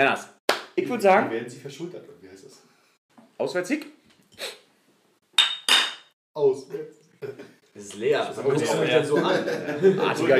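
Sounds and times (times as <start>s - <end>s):
speech: 0.0s - 2.7s, 3.4s - 4.6s, 6.4s - 10.3s
glasses clinking together in a toast: 5.4s - 6.1s
laughter: 8.5s - 10.3s.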